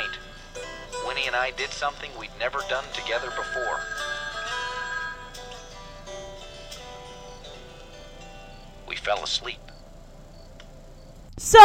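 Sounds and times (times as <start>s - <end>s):
telephone ringing with an electronic warbling tone: 0.0s - 6.2s
speech: 1.2s - 4.1s, 9.0s - 9.7s, 11.5s - 11.6s.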